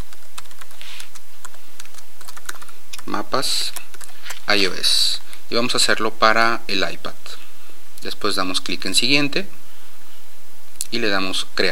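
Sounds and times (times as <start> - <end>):
computer keyboard typing: 0.1 - 4.4
speech: 3.1 - 3.8, 4.5 - 7.4, 8.0 - 9.6, 10.9 - 11.7.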